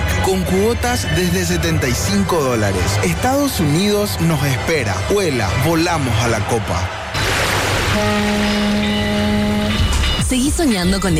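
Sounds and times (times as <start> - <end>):
speech: 0.3 - 7.0, 8.0 - 8.8, 10.3 - 11.1
Caribbean sea waves washing: 7.1 - 9.3
sustained musical tones: 7.2 - 10.2.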